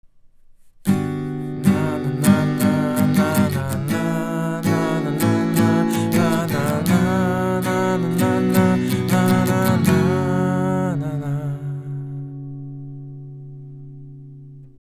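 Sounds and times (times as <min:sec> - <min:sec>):
guitar recorded with a large-diaphragm condenser microphone: 0:00.8 - 0:14.7
voice recorded with a large-diaphragm condenser microphone: 0:01.7 - 0:12.2.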